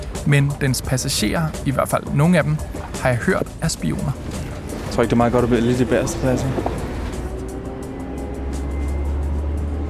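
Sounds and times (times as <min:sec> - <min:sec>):
road noise under a bus: 0:00.0 - 0:09.8
speech: 0:00.2 - 0:06.8
yellow commuter bus engine rumble heard from inside: 0:02.6 - 0:09.8.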